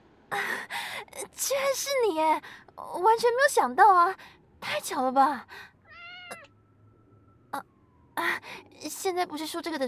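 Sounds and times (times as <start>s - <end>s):
speech: 1.4s - 5.7s, 7.5s - 9.8s
kitten meowing high-pitched: 5.9s - 6.5s.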